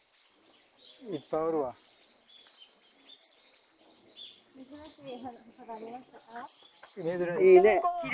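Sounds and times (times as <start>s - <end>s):
birds chirping and tweeting in a jungle: 0.0s - 8.1s
speech: 1.0s - 1.9s, 4.7s - 8.1s.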